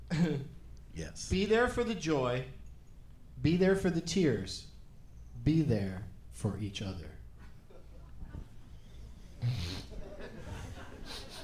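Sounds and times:
speech: 0.3 - 2.6, 3.4 - 4.7, 5.4 - 7.2
laughter: 7.4 - 11.4
person imitating a nasal sniffle: 9.4 - 9.9
softer breathy sniffs: 9.4 - 9.9, 11.0 - 11.4.

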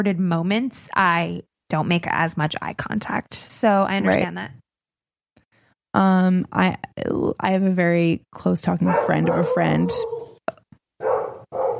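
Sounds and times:
speech: 0.0 - 4.6, 6.0 - 10.2
dog barking: 8.8 - 10.4, 11.0 - 11.7.

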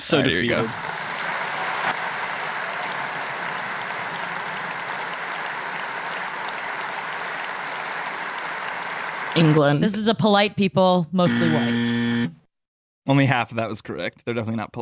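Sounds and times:
applause from a large crowd: 0.0 - 9.8
speech: 0.1 - 0.9, 9.4 - 12.0, 13.1 - 14.8.

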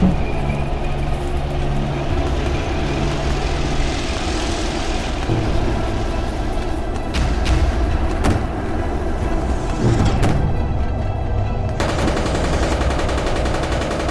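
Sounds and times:
constant low rumble of machinery: 0.0 - 14.1
tanks firing heavy gunfire: 11.8 - 14.1.

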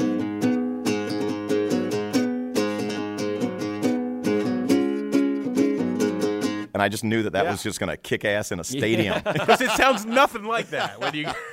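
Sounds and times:
riff plucked on a nylon-string acoustic guitar in an alternate tuning: 0.0 - 6.7
speech: 6.8 - 11.5
laughter: 8.8 - 11.5.

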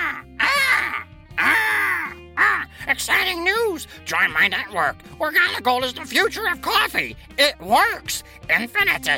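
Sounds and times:
black bird screaming loudly: 0.0 - 2.7
speech: 3.8 - 9.1.

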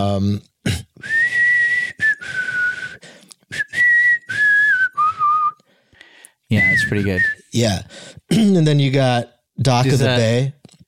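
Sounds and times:
speech: 0.0 - 0.5, 6.9 - 10.6
person whistling a melody: 1.0 - 5.7, 6.5 - 7.5.

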